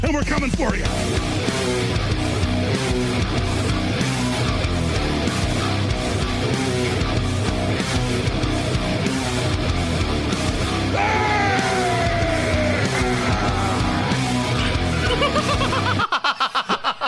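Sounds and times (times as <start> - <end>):
speech: 0.0 - 2.1
loud dense distorted band music: 0.0 - 16.1
harsh vicious scream: 10.8 - 15.0
laughter: 11.4 - 17.0.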